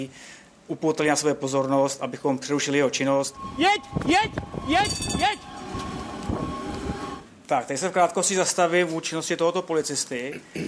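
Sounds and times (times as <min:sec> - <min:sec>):
speech: 0:00.0 - 0:05.9, 0:07.5 - 0:10.6
high metallic whine from tram wheels and rails: 0:02.4 - 0:07.4
tram rolling past through a stop: 0:02.5 - 0:07.4.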